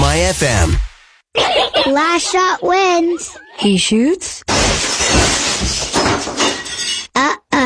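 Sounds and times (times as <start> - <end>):
speech: 0.2 - 6.4
glass shards clattering and tinkling: 4.5 - 7.1
window glass shattering: 4.5 - 7.1.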